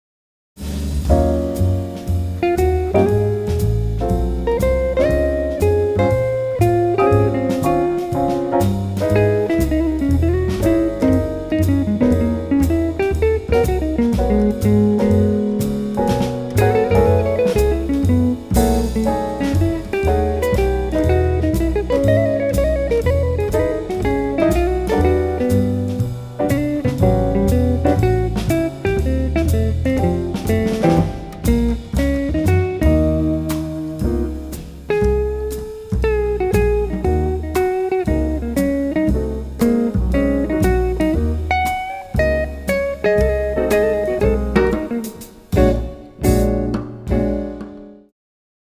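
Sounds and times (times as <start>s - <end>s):
electric guitar jazz: 0.6s - 48.1s.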